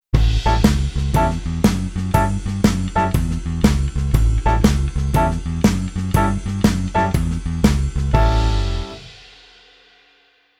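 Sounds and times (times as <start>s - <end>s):
blues keyboard piano: 0.4s - 9.1s.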